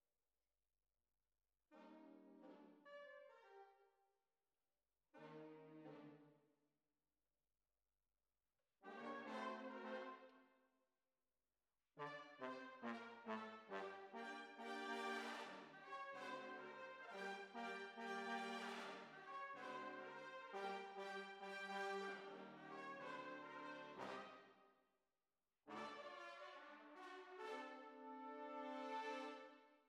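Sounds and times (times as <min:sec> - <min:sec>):
tuba: 0:08.8 - 0:10.4, 0:12.0 - 0:24.6, 0:25.7 - 0:29.7.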